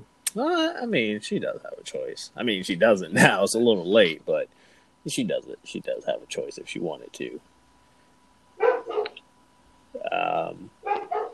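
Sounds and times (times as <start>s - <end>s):
quiet hum: 0.0s - 11.3s
speech: 0.4s - 7.5s
dog barking: 8.6s - 9.2s, 10.8s - 11.3s
dog whining: 8.6s - 9.2s.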